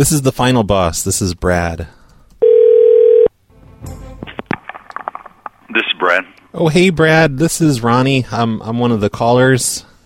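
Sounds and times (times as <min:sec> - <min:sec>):
speech: 0:00.0 - 0:02.0, 0:05.8 - 0:09.9
telephone dial tone: 0:02.4 - 0:03.3.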